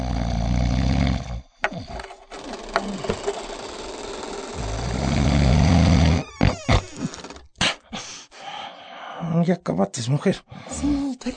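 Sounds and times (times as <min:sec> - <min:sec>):
man snoring loudly: 0:00.0 - 0:07.4
speech: 0:09.5 - 0:11.3.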